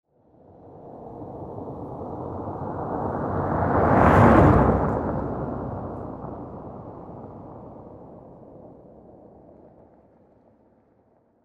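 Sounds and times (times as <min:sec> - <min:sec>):
car driving by on a dirt road: 0:00.7 - 0:09.6.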